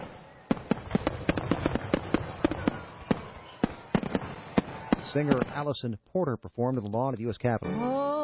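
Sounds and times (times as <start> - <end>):
fireworks display bangs and crackles: 0.0 - 5.7
speech: 5.2 - 8.1.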